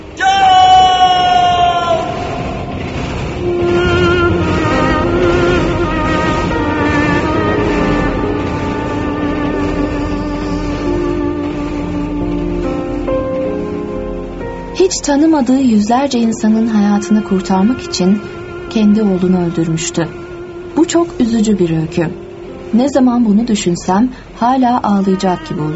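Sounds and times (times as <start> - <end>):
train crossing a bridge: 0.0 - 25.7
man crying out loudly in anguish: 0.1 - 2.7
speech: 14.9 - 20.2, 20.8 - 25.7.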